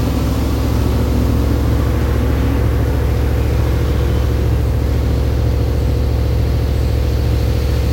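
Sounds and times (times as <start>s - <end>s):
Caterham car engine idling: 0.0s - 7.9s.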